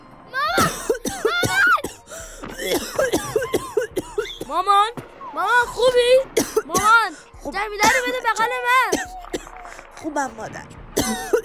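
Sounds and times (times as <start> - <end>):
coughing from thick brick dust: 0.6 - 4.5, 6.4 - 7.0, 11.0 - 11.4
gasping breaths: 2.0 - 2.8
speech: 5.8 - 9.2, 10.0 - 11.4.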